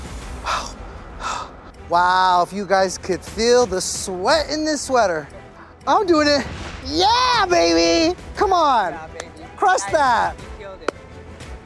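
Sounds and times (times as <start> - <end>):
person breathing deeply: 0.4 - 1.7
speech: 1.9 - 10.4.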